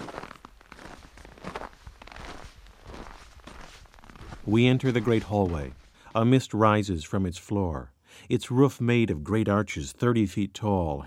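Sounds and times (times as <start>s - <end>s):
footsteps crunching on a hard snowy floor inside an ice hotel: 0.0s - 6.4s
speech: 4.5s - 11.0s.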